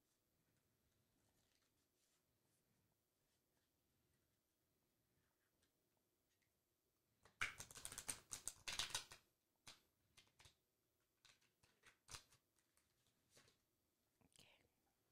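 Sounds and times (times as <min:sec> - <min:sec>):
new deck of playing cards being shuffled and riffled: 0:07.4 - 0:09.2, 0:11.2 - 0:13.6
soft snaps and slides of playing cards: 0:07.4 - 0:10.5
faint whispering: 0:14.2 - 0:15.1.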